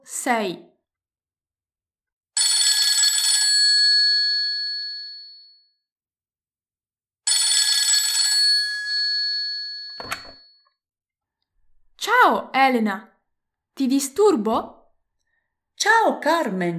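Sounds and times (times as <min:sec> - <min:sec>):
speech: 0:00.1 - 0:00.7, 0:12.5 - 0:13.1, 0:13.8 - 0:14.8, 0:15.8 - 0:16.7
telephone ringing: 0:02.4 - 0:03.9, 0:07.3 - 0:10.6.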